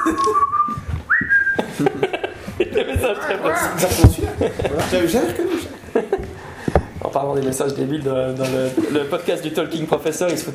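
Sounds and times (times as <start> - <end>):
laughter: 0.0 - 0.5, 1.6 - 6.6
person whistling a signal call: 0.0 - 1.6
murmuring: 2.7 - 5.8
speech: 3.8 - 6.2, 7.2 - 10.5.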